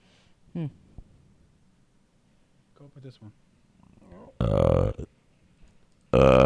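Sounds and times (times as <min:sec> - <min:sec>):
speech: 0:00.6 - 0:00.8, 0:02.8 - 0:03.5, 0:04.1 - 0:05.2, 0:06.1 - 0:06.4
burp sound effect from a soundboard: 0:04.4 - 0:05.1, 0:06.1 - 0:06.4.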